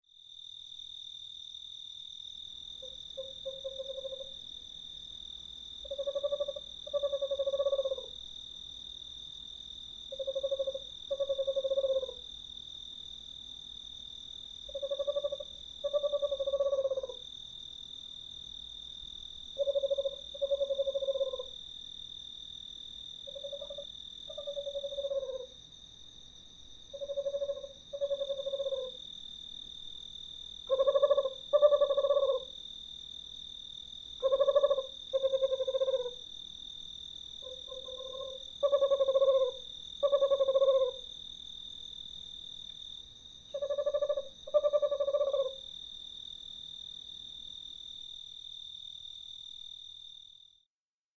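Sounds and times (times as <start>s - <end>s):
western screech owl calling: 5.9s - 8.1s, 10.2s - 12.2s, 14.7s - 17.2s, 19.6s - 21.5s, 23.3s - 25.6s, 27.0s - 29.0s, 30.7s - 32.6s, 34.2s - 36.2s, 37.4s - 41.0s, 43.5s - 45.6s.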